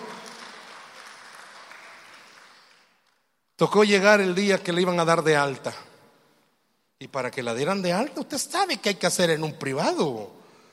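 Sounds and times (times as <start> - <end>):
crowd clapping in a large room: 0.0 - 3.4
speech: 3.6 - 5.9, 7.0 - 10.4.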